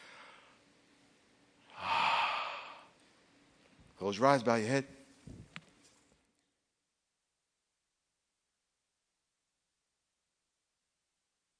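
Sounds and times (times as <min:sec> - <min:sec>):
deep breath in: 0:00.0 - 0:00.6, 0:01.7 - 0:03.0
soft breath: 0:00.0 - 0:00.7, 0:01.7 - 0:03.3
speech: 0:04.0 - 0:05.0.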